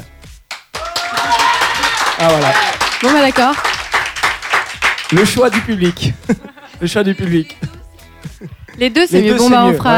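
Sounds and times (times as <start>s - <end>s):
audience applauding: 0.5s - 6.1s
speech: 2.2s - 3.8s, 5.1s - 7.7s, 8.4s - 9.9s
laughter: 5.4s - 8.9s.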